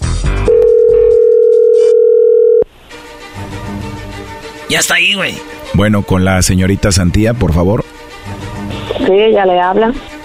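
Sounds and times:
loud steady electronic telephone ringing tone: 0:00.5 - 0:02.7
speech: 0:04.7 - 0:07.8, 0:09.1 - 0:10.1.

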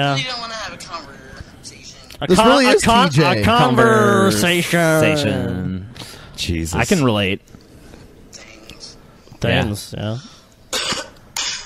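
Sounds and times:
speech: 0:00.0 - 0:01.2, 0:02.2 - 0:05.7, 0:06.4 - 0:07.6, 0:09.4 - 0:10.3
person coughing: 0:10.7 - 0:11.6.

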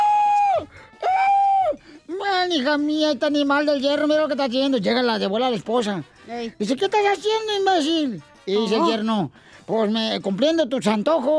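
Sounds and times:
person imitating woman screaming: 0:00.0 - 0:01.8
speech: 0:02.5 - 0:11.3.

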